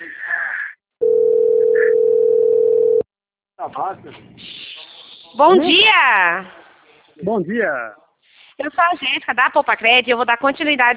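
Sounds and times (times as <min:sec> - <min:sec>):
outgoing telephone call ringing tone: 0:01.0 - 0:03.0
speech: 0:03.7 - 0:04.6, 0:05.3 - 0:06.6, 0:07.2 - 0:08.0, 0:08.6 - 0:10.9
voice snatches: 0:03.8 - 0:05.6.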